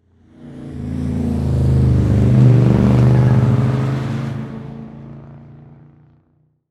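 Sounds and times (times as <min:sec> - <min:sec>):
multiple race cars driving by quickly on a turn: 0:00.4 - 0:05.8.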